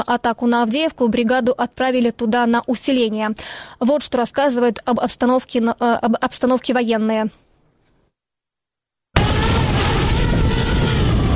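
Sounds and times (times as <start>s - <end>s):
speech: 0.0s - 7.5s
strong wind: 9.2s - 11.3s.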